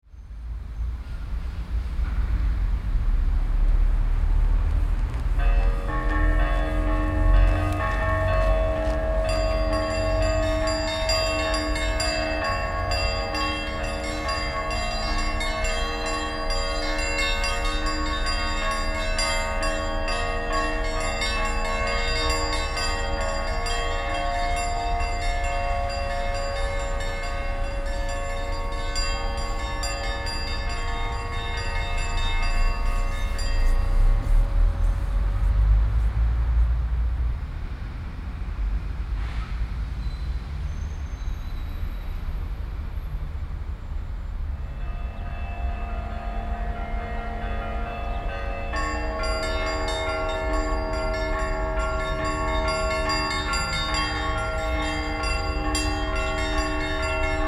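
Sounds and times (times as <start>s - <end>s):
urban city ambience: 0.0s - 57.4s
church bells ringing in a city: 4.2s - 36.1s, 44.4s - 57.4s.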